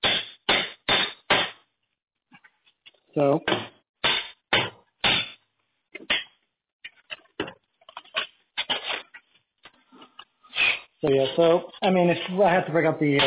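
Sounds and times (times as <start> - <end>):
hatchet used as a hammer striking metal: 0.0 - 1.6, 3.5 - 5.4
speech: 3.2 - 3.7, 11.1 - 13.2.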